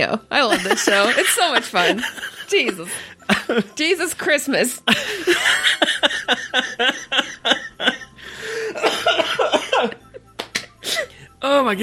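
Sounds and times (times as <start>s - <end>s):
speech: 0.0s - 7.3s, 11.6s - 11.8s
laughter: 0.4s - 4.2s, 4.9s - 10.1s
wheezy gasp: 8.2s - 8.9s, 10.8s - 11.3s
harsh hacking coughs: 8.8s - 9.9s.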